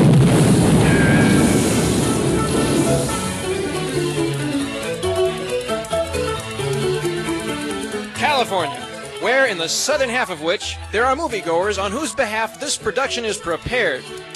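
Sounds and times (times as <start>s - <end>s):
explosion with heavy low rumble: 0.0s - 4.4s
musical tones: 0.8s - 14.3s
speech: 9.4s - 14.3s.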